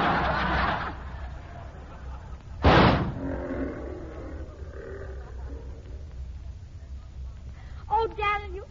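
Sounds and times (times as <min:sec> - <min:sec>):
laughter: 0:00.0 - 0:02.6, 0:04.3 - 0:06.2
noise: 0:00.0 - 0:08.6
gunshot fired at a lion: 0:02.6 - 0:03.2
lion roaring: 0:03.0 - 0:06.1.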